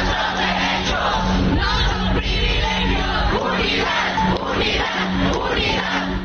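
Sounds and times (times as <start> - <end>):
large crowd of protesting workers shouting slogans near the Chamber of Deputies: 0.0 - 6.2.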